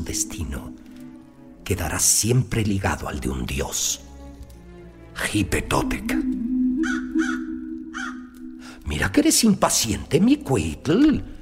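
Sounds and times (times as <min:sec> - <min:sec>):
speech: 0:00.0 - 0:00.9, 0:01.7 - 0:04.1, 0:05.2 - 0:06.5, 0:08.9 - 0:11.4
crow cawing: 0:06.8 - 0:08.7.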